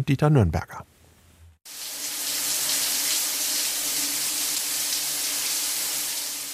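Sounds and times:
speech: 0.0s - 0.9s
water running through a shower head: 1.7s - 6.5s.

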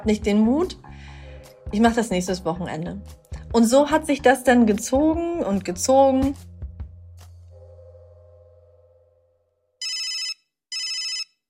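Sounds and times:
speech: 0.0s - 1.1s, 1.7s - 6.5s
telephone ringing in loud buzzy bursts: 9.8s - 11.4s.

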